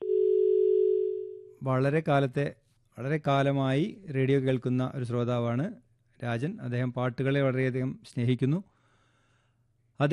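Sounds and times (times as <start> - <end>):
steady single-pitched telephone tone after a call is cut off: 0.0 - 1.5
speech: 1.6 - 8.7, 10.0 - 10.1.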